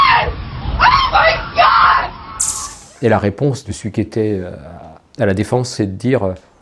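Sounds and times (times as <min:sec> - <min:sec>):
people in offices screaming in panic after the twin towers are hit: 0:00.0 - 0:02.4
sharp high shriek: 0:02.4 - 0:03.0
speech: 0:03.0 - 0:06.5.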